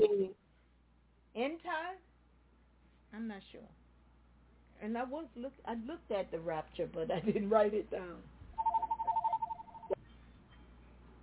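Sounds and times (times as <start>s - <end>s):
speech: 1.4s - 2.1s, 3.1s - 3.8s, 4.8s - 8.3s
telephone ringing with warbling electronic tone: 8.6s - 10.0s.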